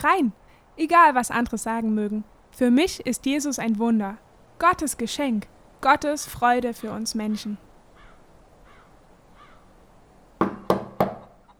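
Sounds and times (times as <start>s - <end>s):
speech: 0.0s - 7.6s
firm knocks on a wooden door: 10.4s - 11.4s.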